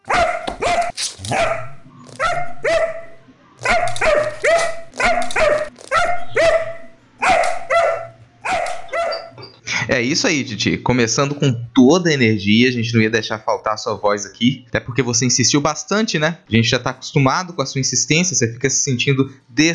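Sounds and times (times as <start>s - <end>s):
dog barking: 0.0s - 9.4s
speech: 10.0s - 19.7s.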